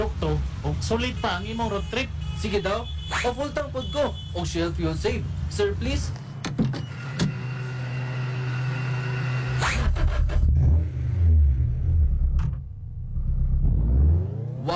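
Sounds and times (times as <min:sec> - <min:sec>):
speech: 0:00.0 - 0:06.2
car engine accelerating in a fuel commercial: 0:07.5 - 0:14.7.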